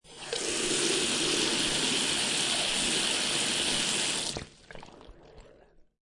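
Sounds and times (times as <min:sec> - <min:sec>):
bathroom water tap running: 0:00.0 - 0:04.6.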